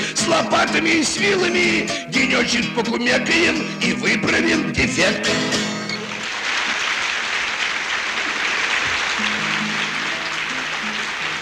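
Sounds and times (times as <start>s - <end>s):
speech: 0.3s - 5.6s
applause from a large audience: 6.0s - 11.4s.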